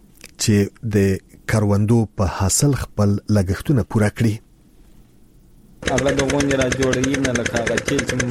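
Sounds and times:
speech: 0.4s - 4.5s, 5.8s - 8.2s
diesel generator pumping water from deep wells to irrigate wheat fields: 5.8s - 8.2s.

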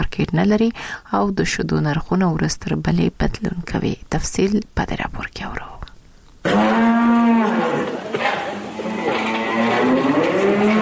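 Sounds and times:
speech: 0.2s - 5.8s
cows lowing on a small dairy farm in Kandahar: 6.4s - 10.7s.

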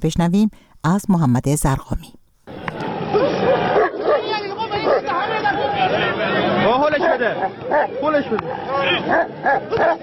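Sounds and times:
speech: 0.0s - 2.2s, 6.9s - 10.0s
noisy crowd of chattering voices: 2.8s - 10.0s
two dogs barking, yipping and whimpering while fighting: 2.9s - 5.5s, 7.0s - 10.0s.

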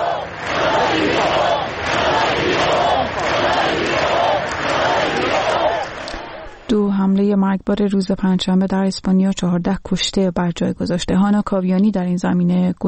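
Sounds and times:
thousands of people clapping in main streets of Barcelona Spain: 0.0s - 6.7s
speech: 6.7s - 12.8s.

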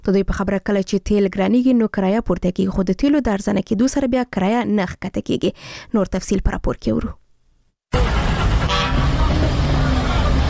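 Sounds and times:
speech: 0.0s - 7.2s
car horn at a busy passenger car station: 7.9s - 10.4s
traffic engine and road noise at a busy passenger car station: 7.9s - 10.4s.

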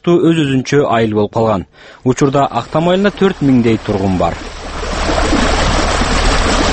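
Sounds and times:
speech: 0.0s - 4.8s
water rushing through a concrete irrigation flume in a village: 2.4s - 6.7s.

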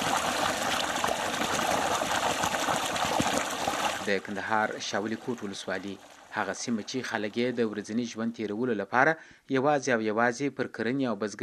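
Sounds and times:
water pumped up from a 300-metre-deep borehole gushing: 0.0s - 8.2s
speech: 4.1s - 11.4s.

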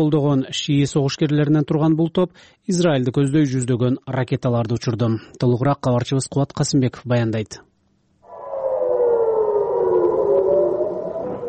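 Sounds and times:
speech: 0.0s - 7.7s
air raid siren in northern Israel near the Lebanese border during air strikes: 8.3s - 11.4s.

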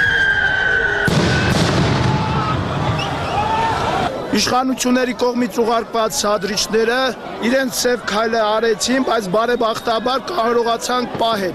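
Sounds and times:
steady crowd noise at a street protest: 0.0s - 11.5s
police stun grenade blast at a street protest: 1.0s - 3.2s
speech: 4.4s - 11.5s.

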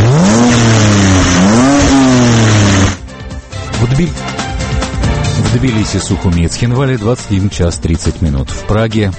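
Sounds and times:
new-generation BMW X3 SUV engine roaring at a motor show in Paris: 0.0s - 3.1s
speech: 4.0s - 4.3s, 5.5s - 9.1s.

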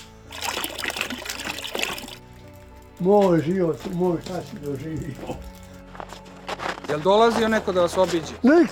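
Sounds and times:
snowmelt water poured for sheep and pigs to drink: 0.0s - 5.8s
speech: 3.0s - 5.5s, 6.9s - 8.7s.

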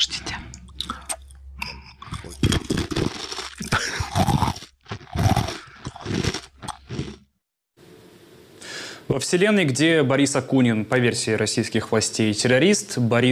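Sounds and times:
dry bagel ring crunched and chewed against a microphone: 2.0s - 7.2s
speech: 9.2s - 13.2s.

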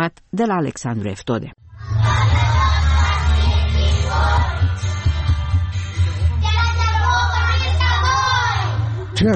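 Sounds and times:
speech: 0.0s - 2.4s, 9.2s - 9.3s
group of young kindergarten children singing a song in unison: 1.7s - 5.3s, 6.4s - 8.9s.

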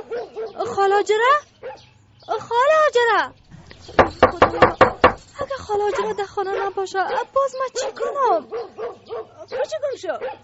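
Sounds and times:
dog barking: 0.0s - 0.8s, 1.6s - 1.9s, 5.8s - 10.4s
speech: 0.8s - 1.5s, 2.3s - 5.0s, 5.7s - 8.9s, 9.5s - 10.4s.

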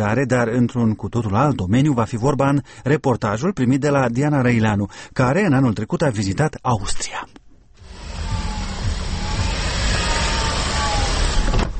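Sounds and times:
speech: 0.0s - 7.4s
car engine running on bioethanol in Austria: 7.8s - 11.7s.

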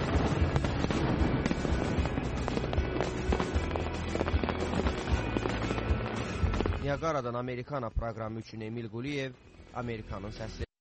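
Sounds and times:
fireworks bursting over Niagara Falls: 0.0s - 7.0s
speech: 6.9s - 10.7s.

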